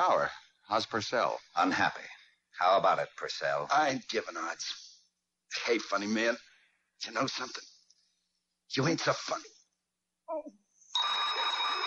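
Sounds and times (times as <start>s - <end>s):
speech: 0.0s - 4.8s, 5.5s - 7.7s, 8.7s - 9.5s, 10.3s - 11.2s
telephone bell ringing: 11.0s - 11.8s.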